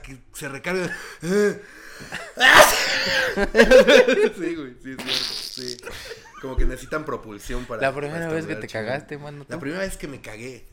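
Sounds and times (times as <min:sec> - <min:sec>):
speech: 0:00.1 - 0:10.7
laughter: 0:02.2 - 0:04.6, 0:05.6 - 0:07.7
person mimicking a loud exaggerated sneeze: 0:02.4 - 0:03.1, 0:05.0 - 0:05.9.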